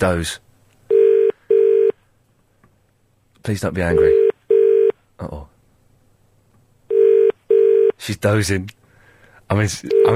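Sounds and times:
speech: 0.0s - 0.4s, 3.4s - 4.2s, 5.2s - 5.5s, 8.0s - 8.8s, 9.5s - 10.1s
telephone ringing tone: 0.9s - 2.0s, 3.9s - 5.0s, 6.9s - 8.0s.

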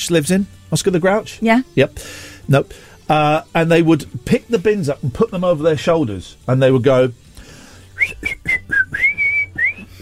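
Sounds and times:
speech: 0.0s - 7.2s
person whistling a tune: 7.9s - 10.0s.

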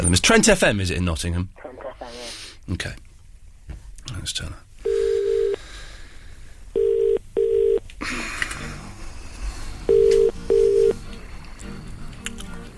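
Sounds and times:
speech: 0.0s - 3.0s, 4.1s - 4.6s, 8.0s - 8.3s
phone dialing: 4.9s - 5.6s, 6.8s - 7.8s, 9.9s - 11.0s
telephone ringing tone in double pulses: 4.9s - 5.6s, 6.8s - 7.8s, 9.9s - 11.0s.

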